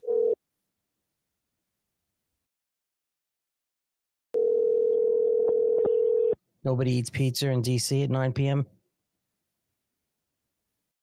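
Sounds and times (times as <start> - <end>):
phone line ringback tone on an outgoing call: 0.0 - 0.4, 4.4 - 6.4
speech: 6.6 - 8.8.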